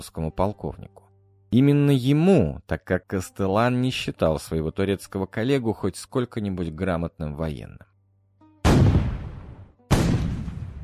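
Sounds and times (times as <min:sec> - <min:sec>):
speech: 0:00.0 - 0:07.9
gunfire and explosions from a siege on a fortress wall: 0:08.7 - 0:10.8.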